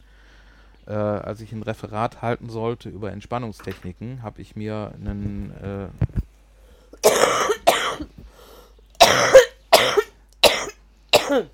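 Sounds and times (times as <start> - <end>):
speech: 0.9 - 6.2
harsh broadband coughs: 7.0 - 8.2, 9.0 - 11.5.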